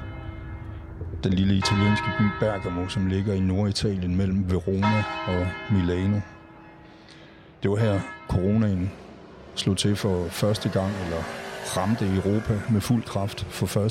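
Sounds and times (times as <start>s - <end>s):
church bells ringing in a small town: 0.0s - 13.8s
speech: 1.2s - 6.3s, 7.6s - 9.0s, 9.6s - 13.8s.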